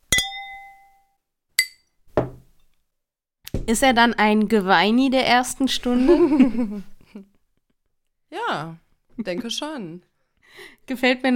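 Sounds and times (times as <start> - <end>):
wine glasses clinking together in a toast: 0.1 - 2.4
speech: 3.7 - 7.3, 8.3 - 11.3
laughter: 6.0 - 7.2.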